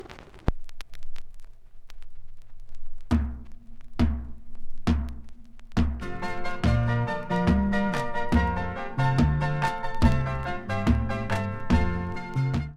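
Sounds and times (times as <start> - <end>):
clean music: 5.8 - 12.7.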